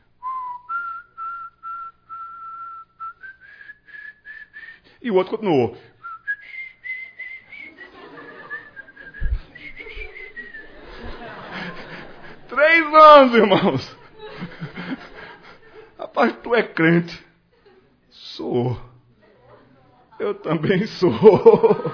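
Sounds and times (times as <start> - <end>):
person whistling a tune: 0.2 - 4.8, 6.0 - 7.9, 8.5 - 10.7
speech: 5.0 - 5.9, 13.2 - 14.0, 16.2 - 17.3, 18.5 - 18.9, 20.3 - 21.9
low murmur of noise: 7.2 - 16.0
laughter: 7.2 - 16.7, 17.4 - 18.0, 20.5 - 21.9
soft thumps: 9.2 - 10.2.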